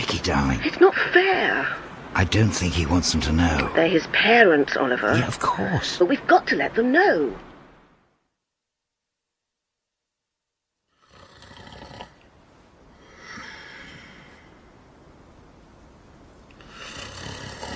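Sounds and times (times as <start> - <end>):
speech: 0.1 - 7.5
man snoring loudly: 10.9 - 12.2, 16.6 - 17.7.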